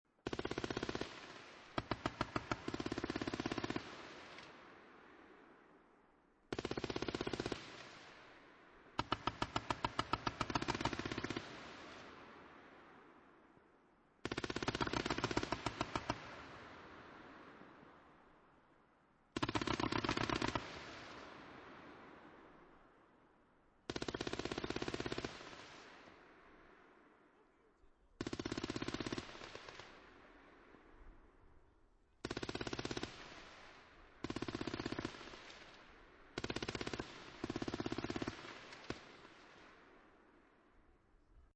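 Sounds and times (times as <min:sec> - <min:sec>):
ambient field fire on a battlefield: 0:00.2 - 0:05.4, 0:06.5 - 0:12.9, 0:14.2 - 0:17.8, 0:19.4 - 0:22.7, 0:23.9 - 0:26.8, 0:28.2 - 0:30.9, 0:32.2 - 0:40.3.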